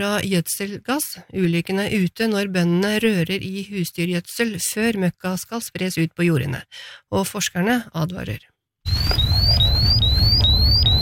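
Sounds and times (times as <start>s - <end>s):
speech: 0.0s - 9.4s
gas detector alarm beeping in a livestock barn: 8.9s - 10.9s.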